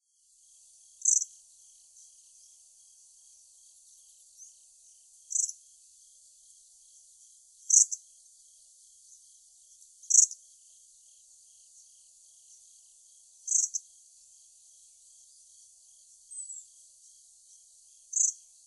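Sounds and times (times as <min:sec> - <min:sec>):
Grey-streaked Flycatcher calling in Hyogo: 0:00.5 - 0:18.6.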